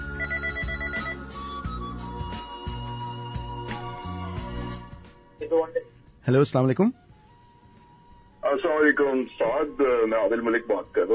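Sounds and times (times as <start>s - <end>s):
telephone ringing with electronic ringtone melody: 0.0s - 1.4s
speech: 5.5s - 7.0s, 8.5s - 11.1s.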